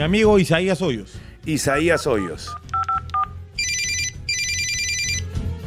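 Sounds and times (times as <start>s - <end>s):
speech: 0.0s - 2.7s
repeated steady electronic tones: 1.6s - 5.2s
telephone ringing unanswered during a quiz-show lifeline call: 1.7s - 5.3s.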